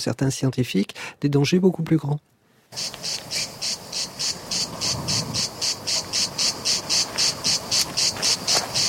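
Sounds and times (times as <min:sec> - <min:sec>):
speech: 0:00.0 - 0:03.2
faint noise: 0:00.0 - 0:08.8
cicada singing in a rapid pulsing buzz: 0:02.7 - 0:08.8.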